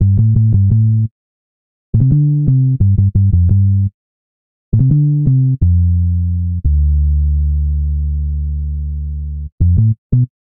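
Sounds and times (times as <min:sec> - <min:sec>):
bassline in A minor at 86 bpm: 0:00.0 - 0:01.1, 0:02.0 - 0:04.0, 0:04.7 - 0:10.3.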